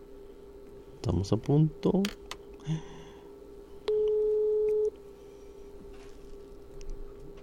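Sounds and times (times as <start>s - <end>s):
speech: 1.0s - 3.0s
unanswered telephone call ringing before going to voicemail: 3.9s - 4.9s.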